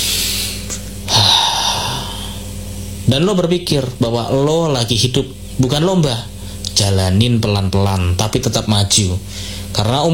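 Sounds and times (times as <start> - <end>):
deep breath in: 0.0 - 2.5
speech: 3.1 - 10.1.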